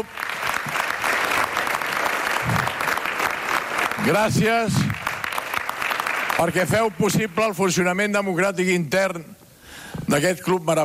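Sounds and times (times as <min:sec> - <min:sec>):
speech: 0:00.0 - 0:00.2, 0:04.0 - 0:05.0, 0:06.4 - 0:09.4, 0:10.1 - 0:10.8
applause from a large audience: 0:00.0 - 0:07.1.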